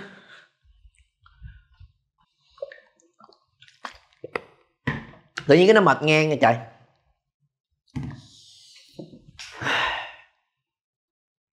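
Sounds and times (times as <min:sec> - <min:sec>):
person sipping water: 0:00.8 - 0:04.5
speech: 0:05.5 - 0:06.7.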